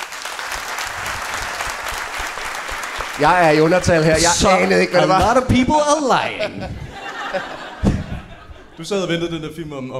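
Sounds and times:
audience clapping: 0:00.0 - 0:05.5
speech: 0:03.2 - 0:07.6, 0:08.8 - 0:09.9
laughter: 0:04.0 - 0:09.5.

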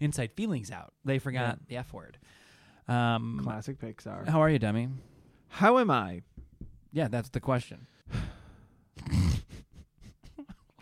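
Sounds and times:
speech: 0:00.0 - 0:08.4
big deep gasp: 0:08.0 - 0:08.8.

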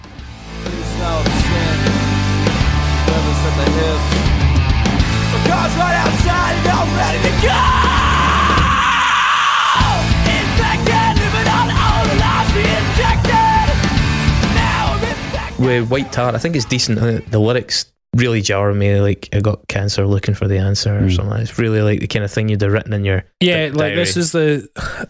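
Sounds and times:
punk rock band playing: 0:00.0 - 0:09.1, 0:09.8 - 0:15.8
raw sustained scream: 0:05.6 - 0:13.8
speech: 0:15.7 - 0:25.0.

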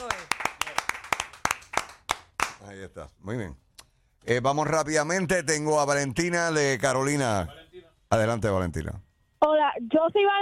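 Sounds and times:
brisk hand clapping applause: 0:00.0 - 0:02.6
speech: 0:02.8 - 0:03.6, 0:04.2 - 0:10.3.

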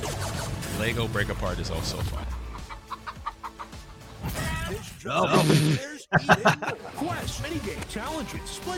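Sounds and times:
speech: 0:00.8 - 0:02.4, 0:04.7 - 0:08.7
chicken clucking and squawking in a game trailer: 0:02.2 - 0:04.0
laughter: 0:05.1 - 0:07.3.

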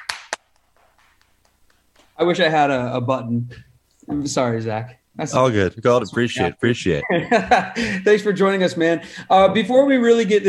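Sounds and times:
hand claps: 0:00.0 - 0:02.2
speech: 0:02.2 - 0:10.4
laughter: 0:06.0 - 0:09.0.

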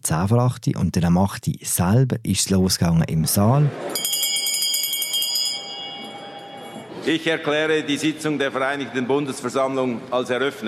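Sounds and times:
speech: 0:00.0 - 0:04.1, 0:07.0 - 0:10.6
parliament session hand bell ringing in Bern Switzerland: 0:03.9 - 0:06.9.

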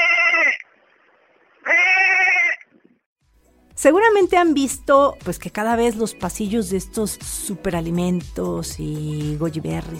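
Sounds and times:
sheep bleating: 0:00.0 - 0:00.6, 0:01.6 - 0:02.6
speech: 0:03.8 - 0:09.9.

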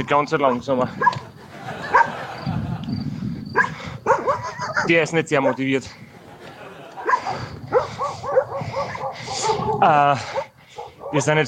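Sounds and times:
speech: 0:00.0 - 0:01.3, 0:04.9 - 0:06.0, 0:09.7 - 0:10.4, 0:11.1 - 0:11.4
dog barking: 0:00.0 - 0:02.2, 0:03.5 - 0:05.7, 0:07.0 - 0:11.4
laughter: 0:00.9 - 0:03.2, 0:04.2 - 0:10.2.

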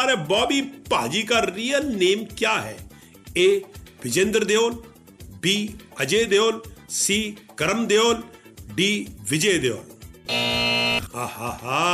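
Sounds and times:
speech: 0:00.0 - 0:11.9
quiz buzzer pressed during a trivia game: 0:10.3 - 0:11.1.

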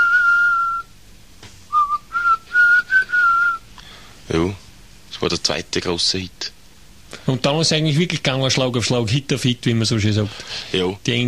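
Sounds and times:
whistled melody from an English-language song: 0:00.0 - 0:00.9, 0:01.7 - 0:03.6
speech: 0:05.2 - 0:06.6, 0:07.3 - 0:11.2.

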